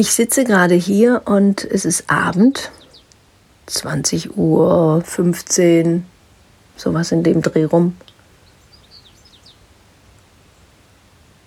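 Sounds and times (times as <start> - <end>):
speech: 0.0 - 2.8, 3.7 - 6.1, 6.8 - 8.1
steady soft outdoor hiss: 0.0 - 11.4
bird singing high twittering chirps at the top of a spruce: 2.5 - 3.2, 8.0 - 9.7.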